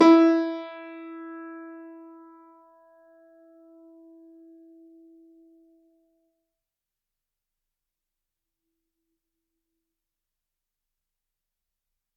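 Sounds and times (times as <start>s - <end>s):
Kawai grand piano E3 note sustaining: 0.0s - 2.1s.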